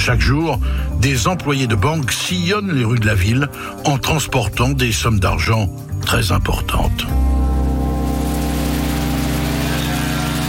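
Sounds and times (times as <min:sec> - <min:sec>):
speech: 0:00.0 - 0:07.3
steady dense rain in Fushu western Tokyo Japan: 0:07.8 - 0:10.4.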